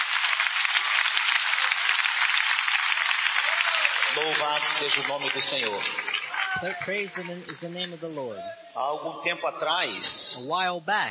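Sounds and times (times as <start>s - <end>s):
congregation clapping at a church service: 0.0s - 8.0s
speech: 4.2s - 11.0s.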